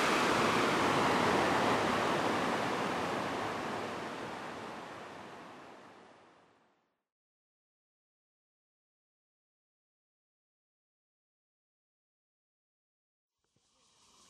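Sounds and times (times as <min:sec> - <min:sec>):
waterfall rushing water: 0:00.0 - 0:06.2.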